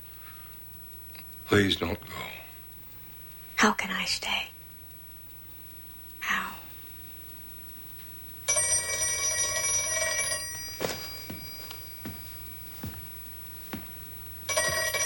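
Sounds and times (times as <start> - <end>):
speech: 1.5 - 2.4, 3.6 - 4.6
old-fashioned telephone bell ringing: 8.5 - 13.0, 14.5 - 15.0
footsteps: 10.4 - 15.0.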